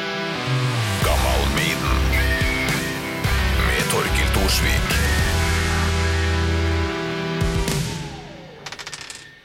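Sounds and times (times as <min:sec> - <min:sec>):
music: 0:00.0 - 0:09.4
die thrown and rolling on table: 0:08.6 - 0:09.4.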